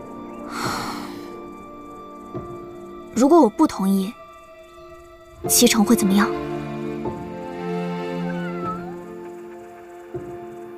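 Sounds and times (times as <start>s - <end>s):
speech: 3.2s - 4.2s, 5.4s - 6.5s
cat meowing: 7.9s - 9.3s.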